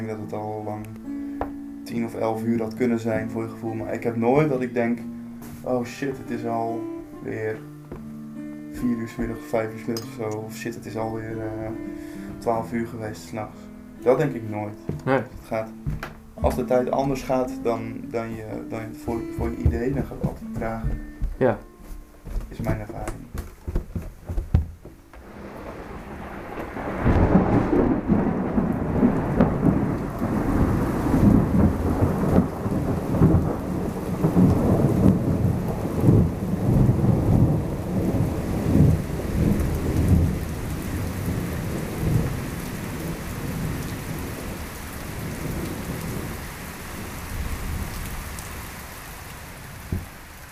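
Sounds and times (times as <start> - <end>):
speech: 0.0 - 1.2, 1.9 - 7.7, 8.8 - 21.7, 22.5 - 23.2
heavy rain over the Groningen countryside in the Netherlands: 0.0 - 21.6, 22.2 - 50.5
deep thunder rumbling over the Groningen countryside in the Netherlands: 15.4 - 21.1, 25.2 - 50.2.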